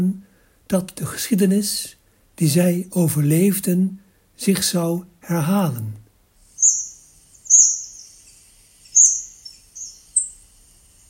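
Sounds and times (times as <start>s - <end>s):
speech: 0.0s - 6.0s
hawfinch high-pitched call notes: 6.5s - 10.4s.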